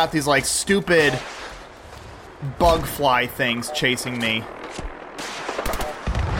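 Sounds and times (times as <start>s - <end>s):
speech: 0.0s - 1.4s, 2.4s - 5.3s
video game gunfire: 4.5s - 6.3s.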